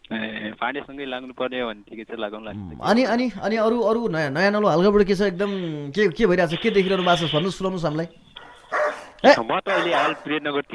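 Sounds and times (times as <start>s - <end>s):
speech: 0.1s - 8.3s, 9.2s - 10.7s
person imitating a barking dog: 2.5s - 3.0s.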